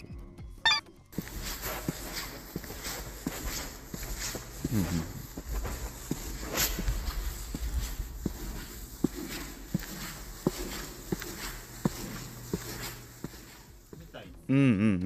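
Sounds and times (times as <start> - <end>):
footsteps at an even walking pace: 0.7 - 14.3
speech: 4.7 - 5.2, 14.5 - 15.0
person murmuring: 4.7 - 5.3, 14.2 - 15.0.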